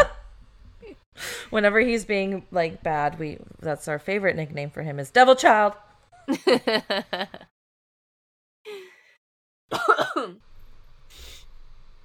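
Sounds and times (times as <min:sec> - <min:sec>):
speech: 0:01.5 - 0:07.4
person coughing: 0:09.7 - 0:10.4.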